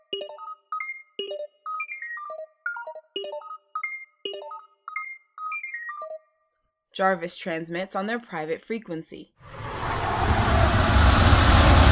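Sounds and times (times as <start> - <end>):
speech: 0.1 - 0.5, 7.0 - 9.6
prototype suit roaring as it takes off in a workshop: 9.4 - 11.9.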